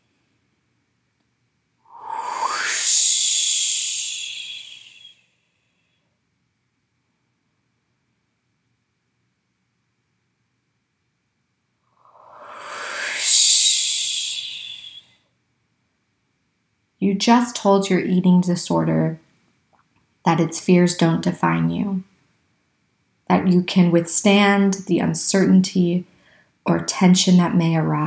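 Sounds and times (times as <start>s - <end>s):
deep slow breaths: 1.8s - 6.0s, 12.0s - 15.2s
speech: 17.2s - 19.2s, 20.2s - 22.1s, 23.3s - 28.0s.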